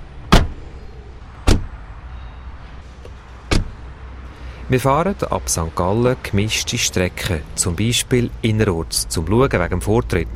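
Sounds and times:
car door thumps as people get into a car in St. Gallen, Switzerland: 0:00.3 - 0:00.6, 0:01.4 - 0:01.7, 0:03.5 - 0:03.8
speech: 0:04.7 - 0:10.3.

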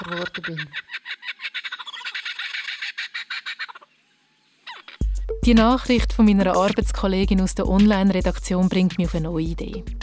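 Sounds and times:
lyrebird singing with mimicked calls and squawks: 0:00.0 - 0:06.8
speech: 0:00.1 - 0:01.0, 0:05.5 - 0:10.0.

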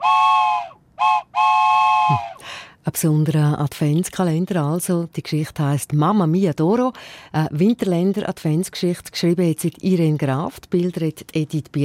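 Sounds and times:
toy steam locomotive whistle: 0:00.0 - 0:02.4
speech: 0:02.8 - 0:11.8.

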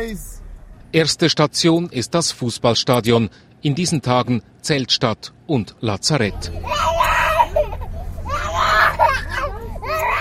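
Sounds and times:
steady low hum: 0:00.0 - 0:02.0, 0:06.3 - 0:10.1
speech: 0:00.0 - 0:06.9
toddler screaming and wailing during abscess treatment: 0:06.5 - 0:10.1.

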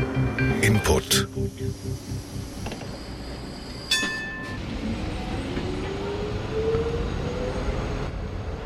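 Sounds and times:
tram rolling along its rails: 0:00.0 - 0:08.6
speech: 0:00.7 - 0:02.2
bright tram ding: 0:03.9 - 0:04.6.

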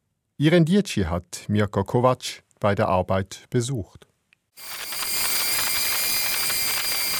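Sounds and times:
speech: 0:00.4 - 0:04.9
drone hovering over a glass surface in a laboratory: 0:04.6 - 0:07.1.

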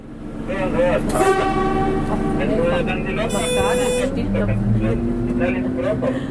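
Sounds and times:
low rumble of a passing train: 0:00.0 - 0:06.2
diesel locomotive horn blasts: 0:01.1 - 0:04.3.

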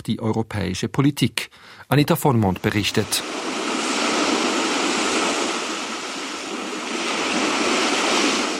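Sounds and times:
speech: 0:00.0 - 0:03.4
ocean waves breaking on shore: 0:02.3 - 0:08.5.

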